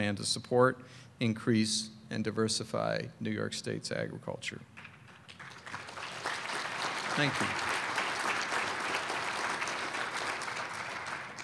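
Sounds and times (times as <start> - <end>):
speech: 0.0 - 5.4, 7.2 - 7.8
large audience applause: 4.9 - 11.4.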